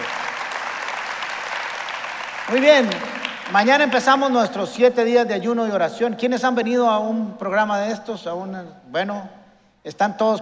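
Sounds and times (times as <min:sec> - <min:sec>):
large church audience applauding after worship: 0:00.0 - 0:04.3
speech: 0:02.5 - 0:10.4.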